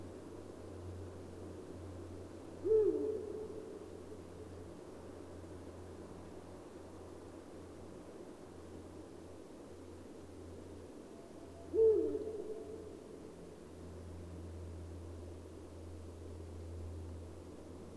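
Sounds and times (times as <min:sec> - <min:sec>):
pulsing low hum and hiss: 0:00.0 - 0:17.9
Eurasian eagle-owl giving a deep hoot: 0:02.6 - 0:03.7, 0:11.5 - 0:12.9.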